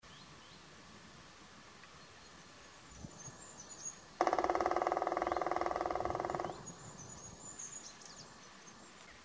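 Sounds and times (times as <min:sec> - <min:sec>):
black woodpecker drumming: 0:04.2 - 0:06.8.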